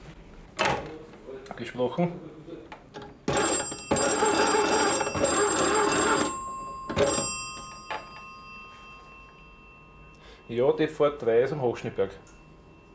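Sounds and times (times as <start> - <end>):
speech: 1.6 - 2.4, 10.5 - 12.4
dispatch telephone bell ringing a signalling code of short and long rings: 3.2 - 12.9.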